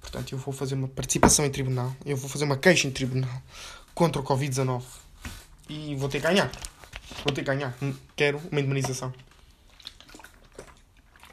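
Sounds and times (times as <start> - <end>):
speech: 0.1 - 9.3
sipping and swallowing water: 9.4 - 11.3.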